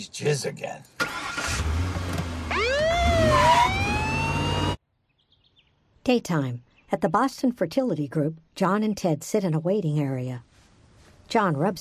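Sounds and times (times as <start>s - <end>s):
speech: 0.0s - 1.9s, 6.1s - 10.5s, 11.3s - 11.8s
police squad car siren wailing: 2.4s - 4.8s.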